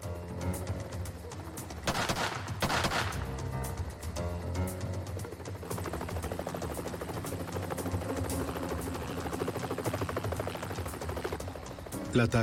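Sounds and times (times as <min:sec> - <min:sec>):
helicopter thrumming overhead with rhythmic rotor chop: 0:00.6 - 0:12.4
sniper's sharp bursts of gunfire: 0:01.8 - 0:03.3
speech: 0:12.2 - 0:12.4.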